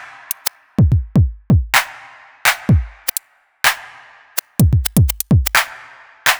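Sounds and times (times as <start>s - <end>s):
slow dubstep drum loop at 126 bpm: 0.3s - 1.0s, 2.6s - 3.2s, 4.4s - 6.3s.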